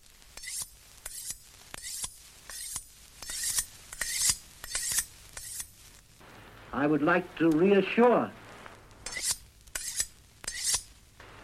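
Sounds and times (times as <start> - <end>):
knife being sharpened: 0.4 - 5.8, 9.0 - 10.9
speech: 6.8 - 8.4.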